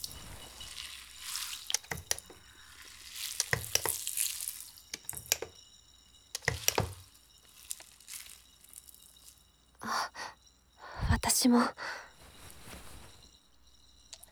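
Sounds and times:
carbonated shampoo foam being lathered: 0.0s - 5.5s, 6.4s - 9.4s
speech: 11.4s - 12.0s.

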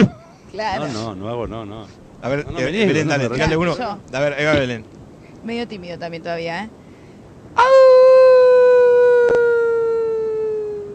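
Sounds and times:
speech: 0.6s - 6.8s, 7.6s - 7.9s
person imitating a howl: 7.6s - 10.9s.

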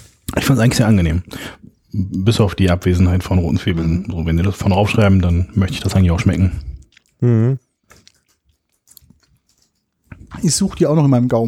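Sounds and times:
speech: 0.5s - 7.6s, 10.4s - 11.4s
crunchy potato chips being chewed: 3.6s - 11.4s.

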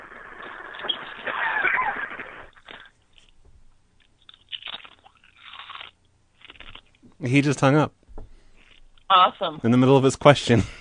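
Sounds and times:
person crunching chips: 0.4s - 3.4s, 4.1s - 7.0s, 8.6s - 8.8s
speech: 7.2s - 8.0s, 9.1s - 10.7s.

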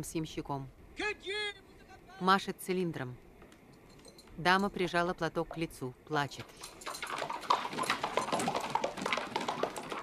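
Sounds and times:
speech: 0.0s - 1.6s, 2.2s - 3.2s, 4.4s - 6.8s
horse hooves clip-clopping as a horse-drawn carriage departs: 3.4s - 10.0s
horse-drawn carriage rolling: 6.6s - 10.0s.

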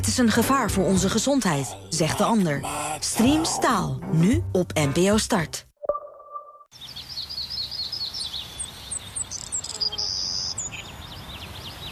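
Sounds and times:
speech: 0.0s - 5.7s
birds chirping and whistling: 6.7s - 11.9s.

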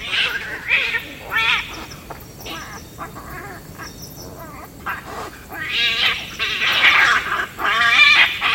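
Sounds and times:
agitated mongoose squealing and yowling at night beside a pond: 0.0s - 8.5s.

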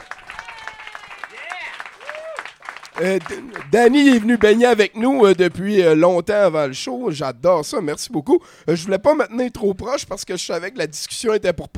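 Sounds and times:
audience whooping: 0.0s - 3.7s
audience applauding a guest on a live evening show: 0.0s - 5.6s
speech: 3.0s - 11.7s.

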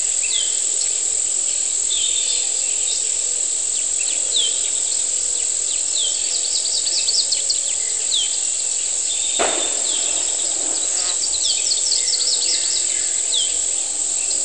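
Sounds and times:
cicada drone on a humid morning in Chiapas: 0.0s - 14.4s.

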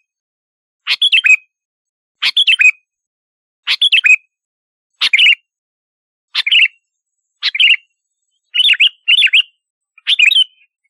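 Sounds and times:
sooty-headed bulbul song: 0.8s - 1.6s, 2.2s - 3.0s, 3.7s - 5.6s, 6.3s - 10.8s.

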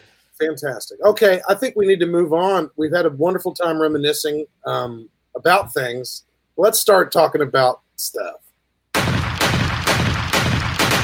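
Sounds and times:
speech: 0.4s - 8.4s
gunshots fired in a rapid burst: 9.0s - 11.0s.

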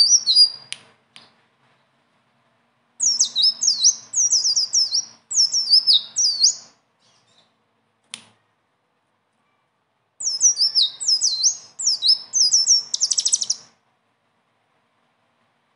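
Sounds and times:
blue-winged leafbird song: 0.0s - 0.7s, 3.0s - 7.5s, 10.2s - 13.8s.

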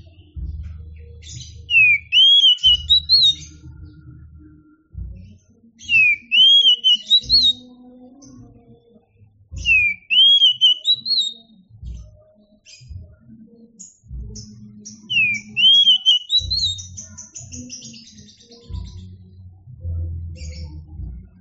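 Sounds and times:
Oriental magpie-robin singing bright whistled phrases: 1.2s - 3.6s, 5.8s - 7.7s, 9.6s - 11.6s, 14.9s - 19.1s.

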